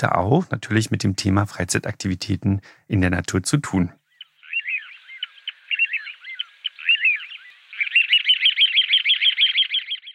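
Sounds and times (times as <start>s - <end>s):
speech: 0.0s - 4.0s
small bird singing: 3.9s - 10.1s.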